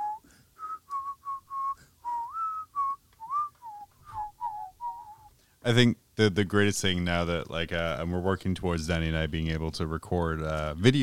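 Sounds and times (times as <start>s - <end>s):
person whistling a bright bouncy melody: 0.0s - 5.3s
speech: 5.6s - 11.0s.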